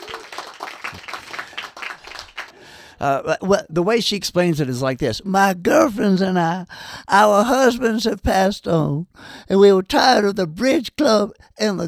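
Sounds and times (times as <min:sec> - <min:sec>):
audience applause: 0:00.0 - 0:02.6
speech: 0:03.0 - 0:11.8.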